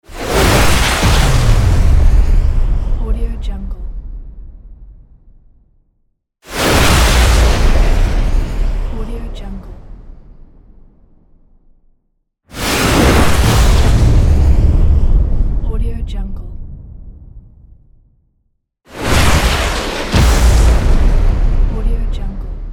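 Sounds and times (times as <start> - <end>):
rocket explosion: 0.0 - 3.2, 3.8 - 5.8, 6.5 - 11.8, 12.5 - 15.7, 18.9 - 22.7.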